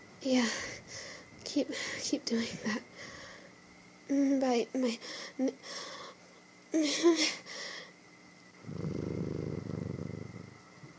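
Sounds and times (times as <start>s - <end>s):
speech: 0.2s - 3.2s, 4.1s - 6.0s, 6.7s - 7.6s
person imitating a cat's purr: 8.6s - 10.5s.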